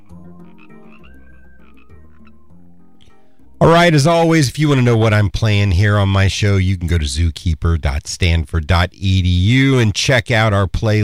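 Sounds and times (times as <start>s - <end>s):
frogs croaking in a dense chorus: 0.0s - 3.5s
speech: 3.6s - 11.0s.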